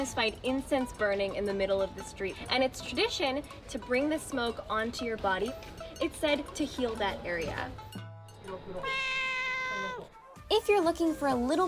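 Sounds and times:
speech: 0.0s - 9.2s, 9.9s - 11.6s
cat meowing: 8.8s - 10.3s.

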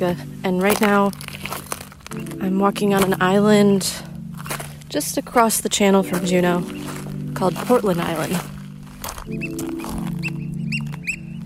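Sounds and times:
speech: 0.0s - 4.1s, 4.9s - 6.8s, 7.4s - 8.5s, 9.3s - 10.1s
oystercatchers calling on Portland Island near Juneau Alaska: 6.0s - 11.4s.

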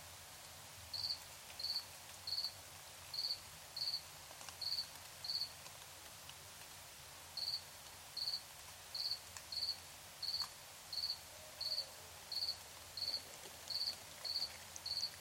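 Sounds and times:
background hiss: 0.0s - 15.1s
crickets chirping at night in Tiny, Ontario: 0.9s - 4.0s, 7.4s - 7.6s, 8.2s - 8.4s, 9.0s - 15.1s.

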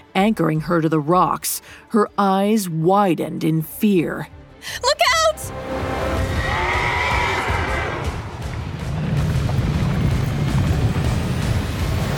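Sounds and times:
speech: 0.2s - 5.8s
hooves and chariot wheels charging down a mountain path: 5.8s - 12.1s
horse whinnying: 6.1s - 8.3s.

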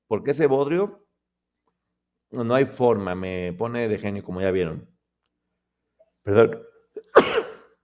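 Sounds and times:
speech: 0.1s - 1.1s, 2.3s - 4.9s, 6.2s - 7.4s
sharp cough or sneeze: 7.0s - 7.8s.

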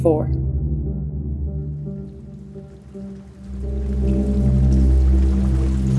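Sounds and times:
speech: 0.0s - 0.5s
steady rain hissing: 1.6s - 5.9s.

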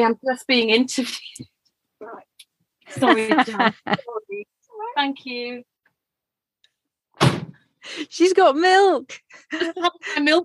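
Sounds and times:
speech: 0.0s - 2.3s, 2.9s - 5.7s, 7.8s - 10.4s
laughter: 2.9s - 4.1s, 9.3s - 10.2s
door closing thud: 7.2s - 7.6s.

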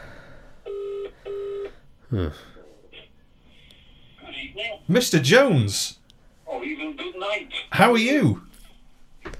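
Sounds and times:
telephone ringback tone on an outgoing call: 0.7s - 1.7s
speech: 2.1s - 2.6s, 4.6s - 6.0s, 6.6s - 8.4s.

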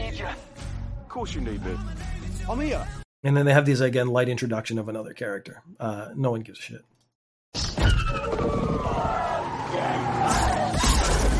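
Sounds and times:
speech: 1.2s - 6.9s
car crash: 7.6s - 11.3s
car tires squealing in a long skid: 7.8s - 11.3s.

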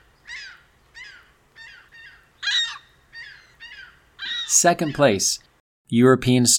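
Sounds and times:
ring-billed gull harsh nasal squawking calls: 0.0s - 5.2s
speech: 4.6s - 6.5s.

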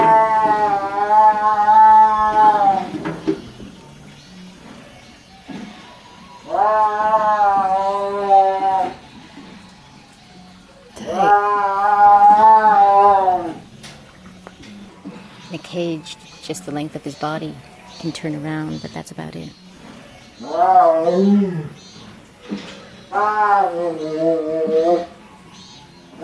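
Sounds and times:
tiger yowling: 0.0s - 3.0s, 5.4s - 9.2s, 10.3s - 15.4s, 20.4s - 21.8s, 22.7s - 25.5s
speech: 16.0s - 19.6s, 20.6s - 21.8s, 23.2s - 25.1s.

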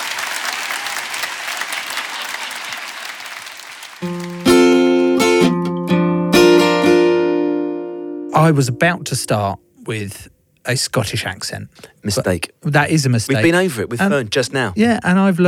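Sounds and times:
crowd applause: 0.0s - 5.6s
speech: 4.0s - 4.2s, 8.4s - 15.4s
bright tonal music: 4.0s - 9.5s.

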